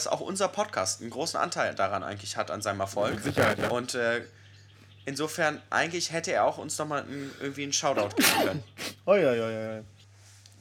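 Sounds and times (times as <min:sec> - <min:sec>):
speech: 0:00.0 - 0:04.4, 0:05.0 - 0:10.0
person sneezing: 0:08.0 - 0:09.0.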